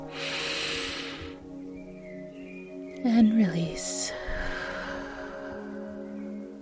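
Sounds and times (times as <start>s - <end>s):
deep breath in during a guided relaxation exercise: 0.0s - 1.4s, 4.1s - 6.4s
speech: 3.0s - 4.2s.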